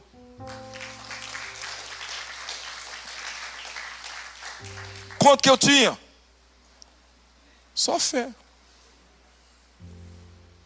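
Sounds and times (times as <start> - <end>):
low organ or keyboard chord droning: 0.0 - 6.4
congregation applauding: 0.4 - 5.7
speech: 5.2 - 6.0, 7.8 - 8.4.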